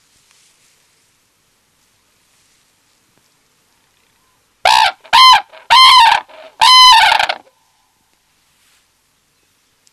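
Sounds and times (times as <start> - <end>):
red-crowned crane trumpeting calls: 4.6 - 7.5.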